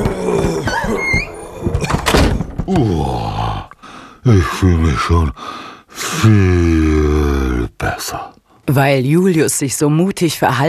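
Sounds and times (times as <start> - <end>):
door creaking open: 0.0 - 3.0
speech: 2.7 - 3.4, 4.2 - 10.6.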